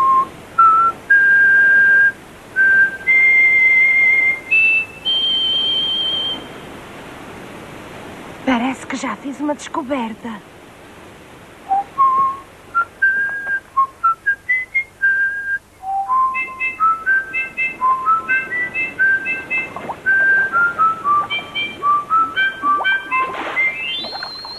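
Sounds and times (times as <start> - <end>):
melodic whistling presented as a whistling fish: 0.0 - 6.5, 11.7 - 24.5
speech: 8.7 - 10.5.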